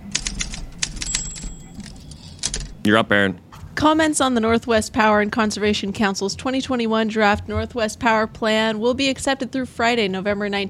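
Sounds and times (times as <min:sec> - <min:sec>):
typewriter keystrokes: 0:00.0 - 0:02.8
speech: 0:02.8 - 0:10.6.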